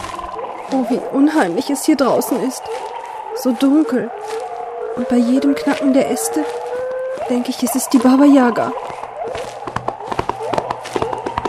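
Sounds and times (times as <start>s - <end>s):
speech: 0.7s - 4.4s, 5.0s - 6.6s, 7.2s - 9.4s
white horse galloping with a rider through a forest: 8.5s - 11.4s.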